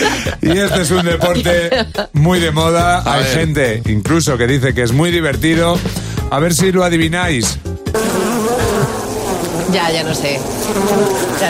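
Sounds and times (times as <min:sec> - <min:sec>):
laughter: 0:00.0 - 0:02.3, 0:08.6 - 0:09.0
speech: 0:00.0 - 0:08.2, 0:09.7 - 0:11.4
loud continuous insect-like buzz: 0:07.9 - 0:11.4.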